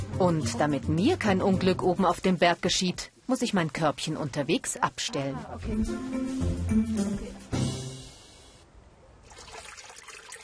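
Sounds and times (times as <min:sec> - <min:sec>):
speech: 0:00.2 - 0:07.2
water trickling and splashing at a sacred spring: 0:09.2 - 0:10.4.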